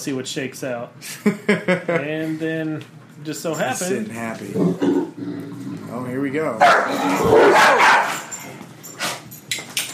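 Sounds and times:
speech: 0.0s - 8.2s
several dogs barking frantically: 6.6s - 8.4s.

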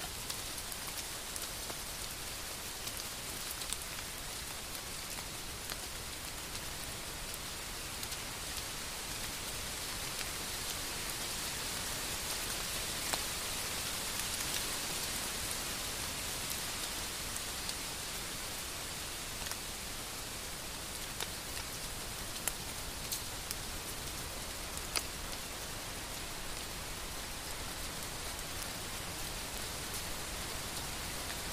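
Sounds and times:
steady rain around a forest camp: 0.0s - 31.5s.

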